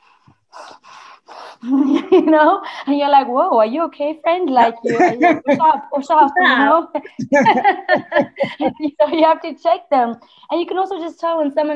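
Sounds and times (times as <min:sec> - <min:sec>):
voice imitating heavy angry breathing: 0:00.0 - 0:01.6
speech: 0:01.6 - 0:11.7
laughter: 0:04.6 - 0:09.2
faint low grunt: 0:04.7 - 0:05.7, 0:07.1 - 0:07.6.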